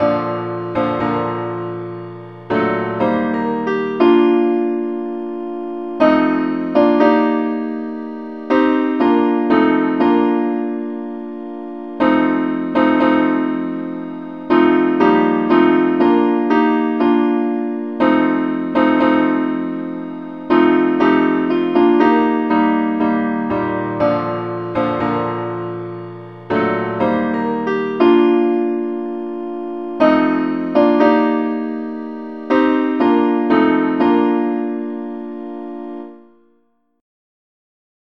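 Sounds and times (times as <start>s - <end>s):
simple keyboard accompaniment: 0.0s - 36.8s.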